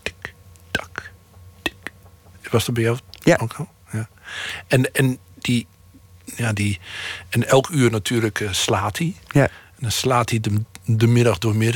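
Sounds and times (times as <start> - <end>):
voice imitating a ticking clock with mouth clicks: 0.0 - 2.1
speech: 2.5 - 11.7.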